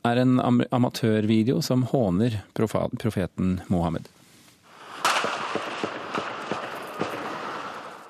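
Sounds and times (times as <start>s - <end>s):
speech: 0.0s - 4.2s
grenade explosions: 4.7s - 8.0s
gunshots: 4.7s - 8.0s.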